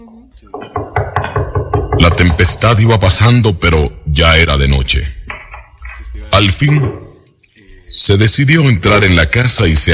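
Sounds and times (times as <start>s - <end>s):
speech: 0.4s - 1.1s, 2.0s - 5.2s, 6.4s - 7.0s, 7.9s - 9.9s
firm knocking on a wooden door: 0.5s - 2.6s.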